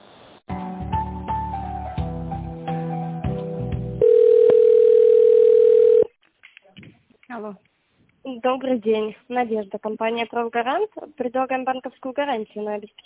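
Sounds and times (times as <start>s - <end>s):
telephone line tones while a business call is being transferred: 4.0s - 6.1s
speech: 7.4s - 7.7s, 8.3s - 13.0s.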